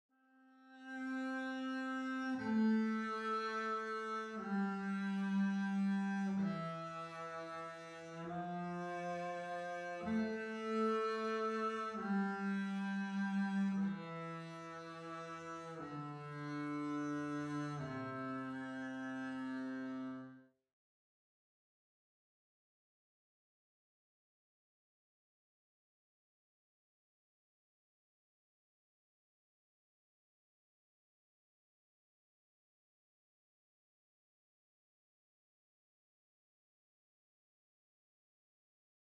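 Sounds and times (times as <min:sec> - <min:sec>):
double bass: 0:01.8 - 0:20.1.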